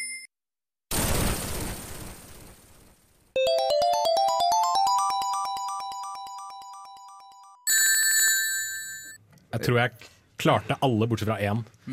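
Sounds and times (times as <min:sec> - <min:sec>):
retro video game crash of a falling ledge: 0:00.9 - 0:03.0
fast bleeping video game arpeggio: 0:03.4 - 0:08.1
retro video game ring-collect chimes: 0:03.4 - 0:09.2
shimmering video game jingle: 0:03.4 - 0:09.2
speech: 0:09.5 - 0:11.9.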